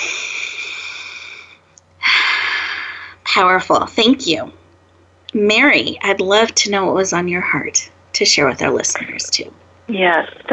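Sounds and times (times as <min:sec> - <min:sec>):
deep breath in: 0:00.0 - 0:03.2
speech: 0:03.4 - 0:04.6, 0:05.3 - 0:10.5.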